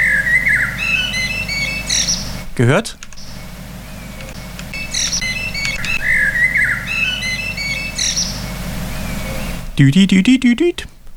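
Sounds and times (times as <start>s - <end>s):
blackbird singing a melodic phrase: 0.0s - 11.1s
speech: 2.6s - 3.0s, 9.8s - 10.9s.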